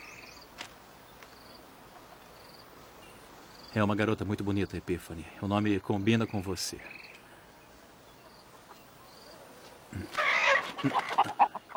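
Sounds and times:
chickens clucking: 1.8s - 2.6s, 8.2s - 11.7s
speech: 3.8s - 7.0s, 10.8s - 11.1s.

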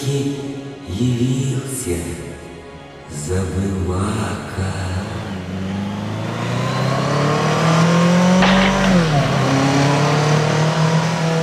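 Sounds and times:
speech: 0.1s - 2.4s, 3.1s - 6.0s
motorcycle engine roaring: 5.5s - 11.4s.

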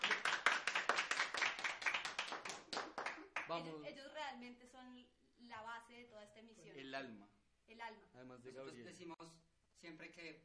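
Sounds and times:
small audience clapping in a live radio studio: 0.0s - 3.7s
speech: 3.5s - 10.4s.

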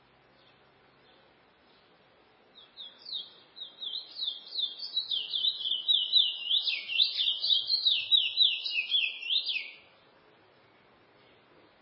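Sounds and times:
Chestnut-bellied seed finch song of high slurred whistles and twitters: 2.6s - 9.8s.

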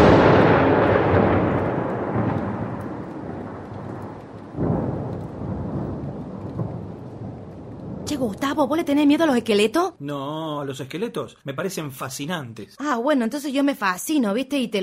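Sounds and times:
heavy thunder from a night thunderstorm: 0.0s - 10.0s
steady wash of thunderstorm noise: 0.0s - 10.0s
speech: 8.2s - 14.8s.

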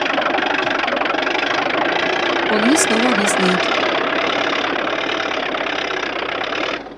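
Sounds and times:
tractor engine roar pulling away from a standstill: 0.0s - 6.9s
speech: 2.5s - 3.8s.

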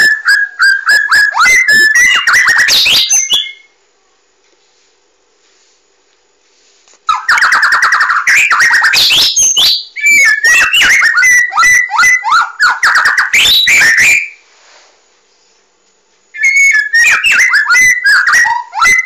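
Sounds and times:
Oriental magpie-robin singing varied whistles and sharp chirps: 0.0s - 3.7s, 7.1s - 14.4s, 16.4s - 19.0s.

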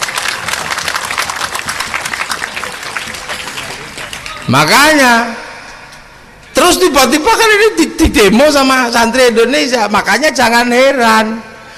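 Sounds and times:
audience applauding at a religious lecture: 0.0s - 4.6s
speech: 4.5s - 5.4s, 6.7s - 11.5s.

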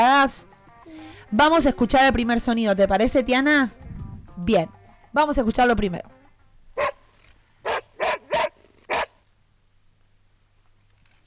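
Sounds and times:
speech: 0.0s - 0.5s, 1.3s - 3.8s, 4.4s - 6.2s
dog barking: 6.8s - 7.0s, 7.6s - 9.2s.

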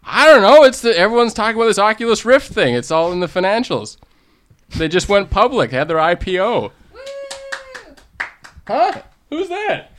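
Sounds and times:
speech: 0.4s - 4.1s, 4.7s - 7.1s, 8.7s - 9.9s
one person clapping hands: 7.0s - 9.2s.

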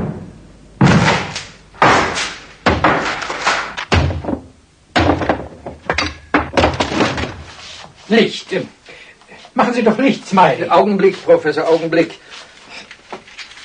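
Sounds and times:
bolted wooden workshop door being forced open: 0.8s - 7.5s
speech: 8.1s - 8.8s, 9.6s - 12.2s.

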